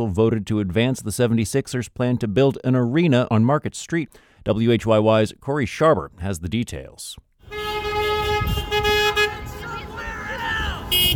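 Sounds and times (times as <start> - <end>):
speech: 0.0 - 7.3
car horns honking in congested evening commute traffic in center city Philadelphia: 7.4 - 11.1
street traffic in center city Philadelphia: 7.4 - 11.1.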